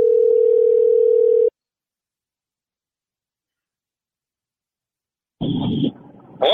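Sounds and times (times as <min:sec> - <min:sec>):
phone dialing tone: 0:00.0 - 0:01.5.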